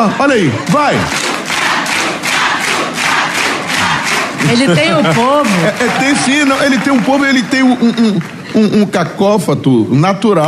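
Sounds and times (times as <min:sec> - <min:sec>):
speech: 0:00.0 - 0:01.3, 0:04.4 - 0:10.4
large audience chanting a contestant's name in unison: 0:01.0 - 0:05.0
laughter: 0:03.8 - 0:09.0.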